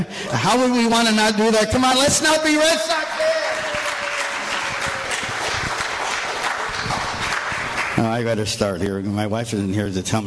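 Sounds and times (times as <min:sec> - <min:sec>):
speech: 0:00.0 - 0:03.3, 0:08.0 - 0:10.2
church audience clapping: 0:02.3 - 0:08.6.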